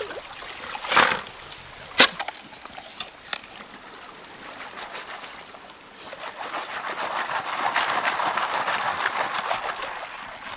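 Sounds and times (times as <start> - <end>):
river water trickling at a river bend downstream from an old mine: 0.0 - 10.5
sharp splashy knocks from digging and panning for gold: 0.6 - 2.4.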